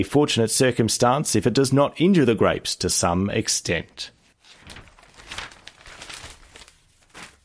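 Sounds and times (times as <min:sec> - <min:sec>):
speech: 0:00.0 - 0:04.8
newspaper rustling and crinkling as it is folded closed: 0:04.2 - 0:07.4.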